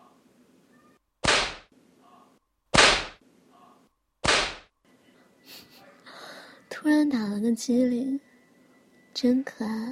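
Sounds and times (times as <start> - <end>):
whip cracking: 1.2 - 1.7, 2.8 - 3.2, 4.2 - 4.7
speech: 7.1 - 8.3, 9.2 - 9.9.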